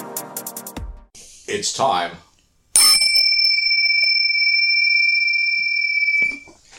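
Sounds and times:
speech: 1.5s - 2.3s
bell struck with a bright metallic tone: 2.8s - 6.5s.

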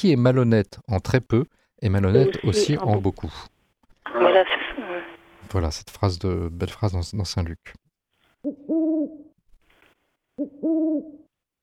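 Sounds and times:
speech: 0.0s - 4.6s, 5.4s - 7.8s, 8.4s - 9.2s, 10.4s - 11.2s
soft rustle: 8.1s - 8.5s, 9.5s - 10.4s
owl hooting at dusk: 8.4s - 9.4s, 10.4s - 11.3s.

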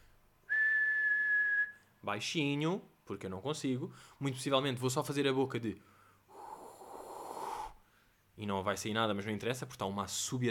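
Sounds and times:
person whistling one steady sustained note: 0.5s - 1.9s
speech: 2.0s - 5.9s, 8.4s - 10.4s.

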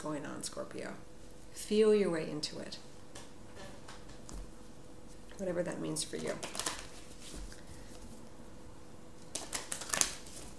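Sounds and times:
speech: 0.0s - 2.9s, 5.4s - 6.6s
numerology deck cards drawn, snapping and rustling: 6.3s - 7.6s, 9.2s - 10.5s.

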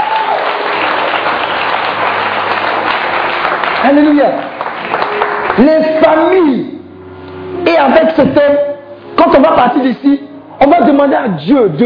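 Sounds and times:
church congregation applauding during a worship service: 0.0s - 6.8s
speech: 3.9s - 5.0s, 5.6s - 6.8s, 7.6s - 11.8s.

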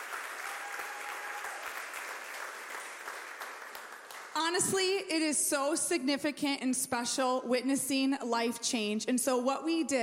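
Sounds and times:
audience applauding: 0.0s - 4.4s
speech: 4.4s - 10.0s.

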